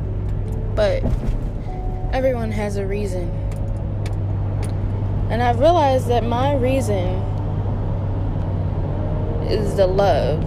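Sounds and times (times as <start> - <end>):
car engine rumbling: 0.0 - 10.4
speech: 0.8 - 1.5, 2.1 - 3.4, 5.3 - 7.3, 9.5 - 10.4.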